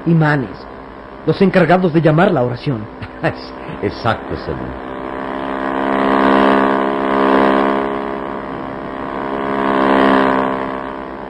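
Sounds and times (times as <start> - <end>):
speech: 0.1 - 4.8
speedboat engine roaring as the boat turns: 1.3 - 11.2
laughter: 2.9 - 4.2.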